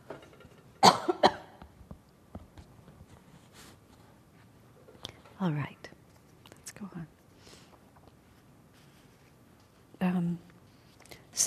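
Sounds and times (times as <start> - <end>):
person coughing: 0.8 - 1.6
speech: 5.4 - 5.9, 6.8 - 7.2.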